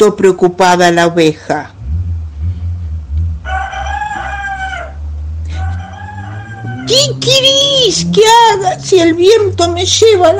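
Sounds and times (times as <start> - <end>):
speech: 0.0 - 1.8, 6.9 - 10.3
low rumble: 1.6 - 9.8
rooster crowing: 3.3 - 7.2.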